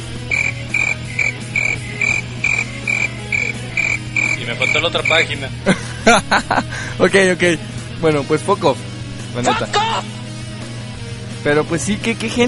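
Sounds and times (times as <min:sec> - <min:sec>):
crickets chirping: 0:00.2 - 0:05.3
croaking in a night chorus: 0:00.2 - 0:05.4
laughter: 0:04.6 - 0:07.0
speech: 0:04.6 - 0:10.2, 0:11.4 - 0:12.4.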